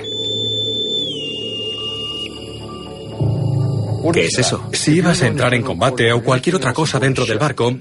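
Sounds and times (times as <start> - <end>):
boatswain's pipe aboard a ship: 0.0 - 3.5
speech: 4.0 - 7.7.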